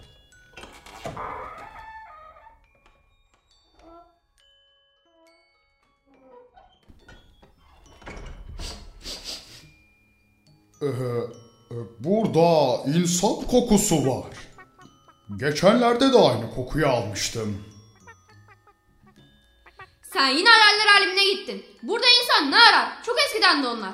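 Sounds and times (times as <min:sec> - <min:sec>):
speech: 0:10.8 - 0:14.5, 0:15.4 - 0:17.7, 0:20.2 - 0:23.9
chicken clucking: 0:14.3 - 0:15.0.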